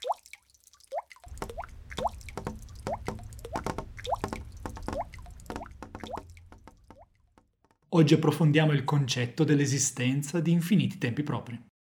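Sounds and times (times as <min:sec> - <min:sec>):
rainwater dripping from house gutters: 0:00.0 - 0:07.9
speech: 0:08.0 - 0:11.7.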